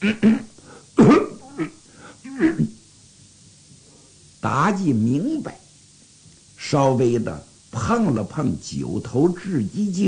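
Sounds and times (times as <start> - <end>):
speech: 0.0 - 0.4, 4.4 - 5.6, 6.7 - 10.0
person clearing throat behind a curtain: 0.0 - 2.8
person performing hoarse coughs behind a curtain: 0.0 - 2.8.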